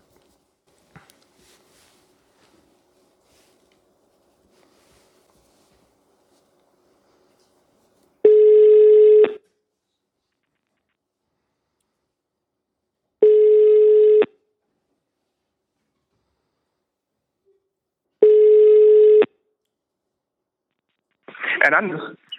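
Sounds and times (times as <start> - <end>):
phone line ringback tone on an outgoing call: 8.2 - 9.4, 13.2 - 14.4, 18.2 - 19.3
speech: 21.7 - 22.3.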